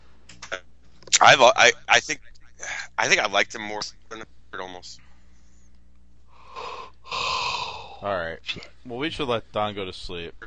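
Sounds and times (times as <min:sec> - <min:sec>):
speech: 0:01.2 - 0:05.0, 0:08.0 - 0:10.4
loud breathy yawn: 0:06.4 - 0:08.0.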